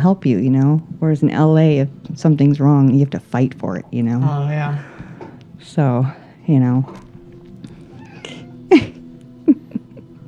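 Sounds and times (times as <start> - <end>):
speech: 0.0 - 5.0, 5.6 - 7.1, 8.7 - 8.9
laughter: 4.2 - 10.2
cat meowing into a microphone: 6.8 - 9.6.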